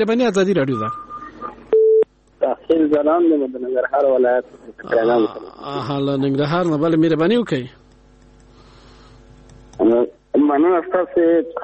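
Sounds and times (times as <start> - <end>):
speech: 0.0 - 1.0, 2.7 - 7.8, 9.8 - 11.6
telephone line disconnected tone after call cut off: 0.7 - 2.0.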